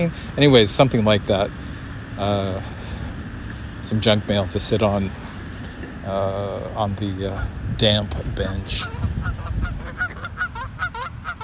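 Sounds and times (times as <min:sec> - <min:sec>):
speech: 0:00.0 - 0:01.6, 0:02.2 - 0:02.8, 0:03.9 - 0:05.2, 0:06.0 - 0:09.1
low rumbling outdoor background: 0:00.0 - 0:11.4
Canada geese honking: 0:08.4 - 0:11.4.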